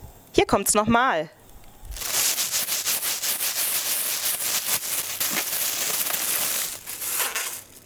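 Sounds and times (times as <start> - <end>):
speech: 0.4 - 1.4
plastic bag crinkled and rustled: 1.9 - 7.8.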